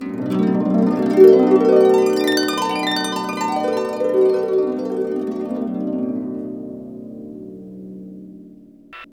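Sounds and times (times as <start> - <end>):
harp glissando: 0.0 - 8.4.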